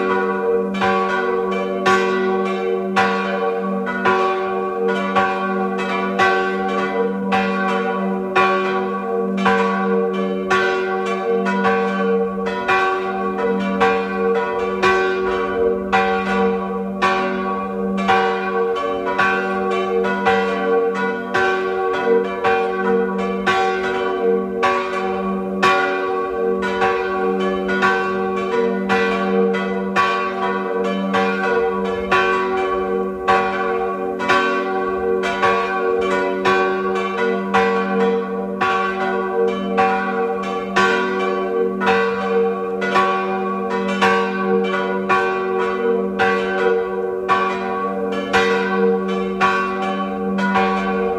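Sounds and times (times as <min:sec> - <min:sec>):
parish church bells ringing: 0:00.0 - 0:51.1.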